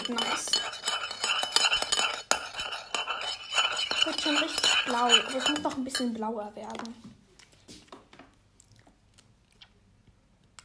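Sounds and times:
spoon clinking against a glass while stirring a blue cocktail: 0.0 - 6.1
speech: 4.2 - 7.2.

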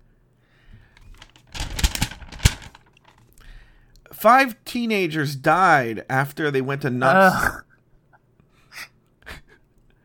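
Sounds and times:
crinkly paper rustling: 1.0 - 3.3
speech: 4.2 - 7.6.

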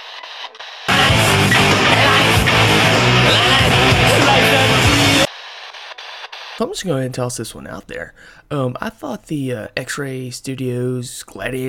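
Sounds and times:
radio static: 0.0 - 6.7
speech: 6.6 - 11.6.

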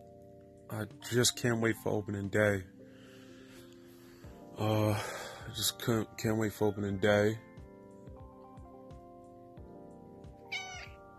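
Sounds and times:
speech: 0.7 - 2.7, 4.6 - 7.5
Bombay cat meowing: 10.4 - 11.0.

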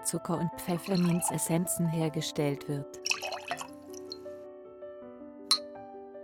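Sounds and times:
speech: 0.0 - 3.1
peppermint liqueur poured into a large tankard: 0.6 - 1.8, 3.0 - 4.3
light glassy clink: 0.8 - 1.4, 3.0 - 4.2.

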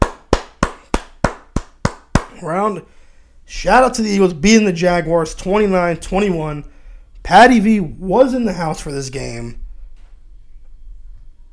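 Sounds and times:
single person clapping: 0.0 - 2.4
speech: 2.4 - 9.6.

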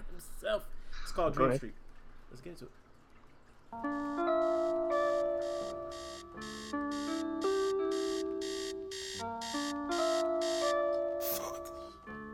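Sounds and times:
speech: 0.4 - 2.8, 3.7 - 4.9
sustained melodic synth-like tones: 3.8 - 12.1
alarm clock ringing with rapid repeated beeps: 3.9 - 11.9.

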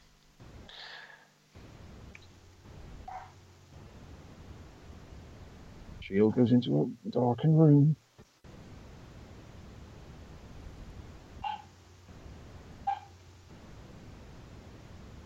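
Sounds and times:
steady background hiss: 0.0 - 15.2
dog barking: 3.0 - 3.4, 11.4 - 11.8, 12.8 - 13.2
speech: 6.1 - 8.0.

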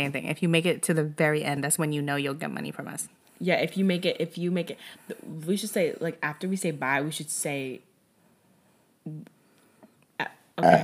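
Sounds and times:
speech: 0.0 - 7.9, 9.0 - 9.4, 10.2 - 10.8
person burping: 10.2 - 10.8
throaty vocal bursts: 10.6 - 10.8.

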